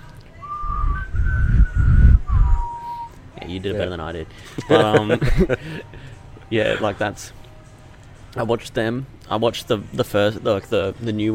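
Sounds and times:
person whistling a short tune: 0:00.4 - 0:03.2
breathy low rumble: 0:00.5 - 0:02.8
speech: 0:03.5 - 0:07.4, 0:08.4 - 0:11.3
laughter: 0:04.4 - 0:07.0.

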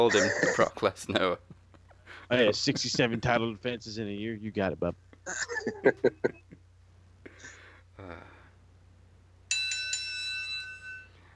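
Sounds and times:
speech: 0:00.0 - 0:01.5, 0:02.2 - 0:06.6, 0:08.0 - 0:08.3
laughter: 0:00.0 - 0:03.5, 0:05.3 - 0:06.6
bright bell strike: 0:09.5 - 0:11.3.

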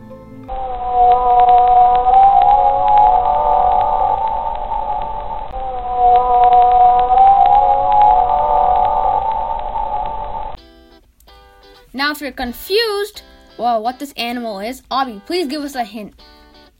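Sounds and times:
long tonal moaning whale calls: 0:00.5 - 0:10.6
speech: 0:12.1 - 0:16.4.

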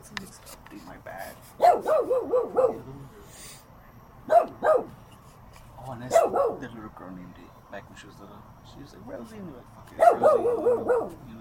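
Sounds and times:
dog barking: 0:01.6 - 0:02.9, 0:04.2 - 0:05.0, 0:06.1 - 0:06.7, 0:10.0 - 0:11.2
speech: 0:06.9 - 0:11.3.

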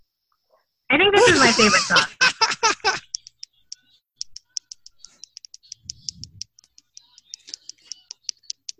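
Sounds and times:
speech: 0:00.9 - 0:02.2
laughter: 0:01.2 - 0:03.2
fingers drumming on a computer keyboard: 0:03.0 - 0:08.7.

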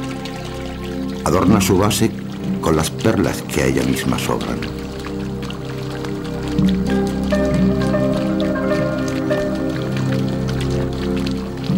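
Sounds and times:
water spilling and splashing over the edges of a fountain basin: 0:00.0 - 0:11.7
speech: 0:01.2 - 0:04.9.

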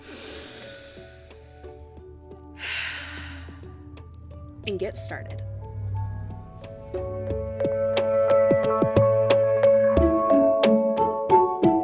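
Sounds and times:
deep breath drawn in: 0:00.0 - 0:04.0
music: 0:00.0 - 0:11.8
speech: 0:04.7 - 0:05.4, 0:06.9 - 0:07.3.

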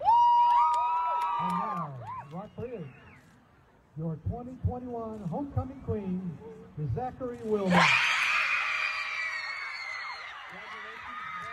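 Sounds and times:
large crowd of girls screaming and cheering at a high school homecoming: 0:00.0 - 0:02.2, 0:07.7 - 0:11.5
speech: 0:04.2 - 0:08.1.

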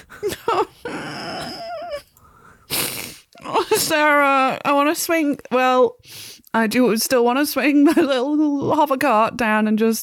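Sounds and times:
dog growling and whimpering: 0:00.5 - 0:02.1
speech: 0:03.8 - 0:10.0.

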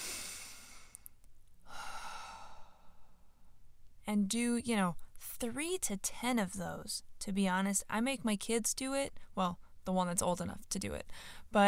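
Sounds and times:
deep breathing as a relaxation exercise: 0:00.0 - 0:03.5
speech: 0:04.1 - 0:11.6.

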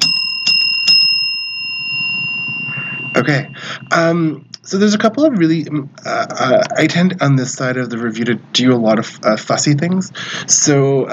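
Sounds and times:
small handheld bell ringing: 0:00.0 - 0:04.1
speech: 0:03.2 - 0:11.1.

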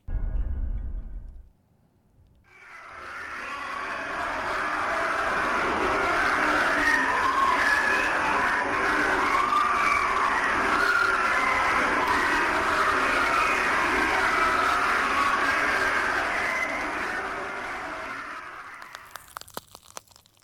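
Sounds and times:
low rumble: 0:00.0 - 0:01.5
eerie screaming-like wailing from a deep borehole: 0:02.5 - 0:20.4
crackles and pops from a melting microphone: 0:18.6 - 0:20.4.

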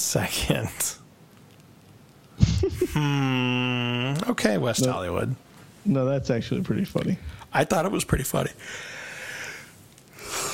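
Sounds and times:
speech: 0:00.1 - 0:01.0, 0:02.7 - 0:09.0
person yawning: 0:02.4 - 0:04.2.

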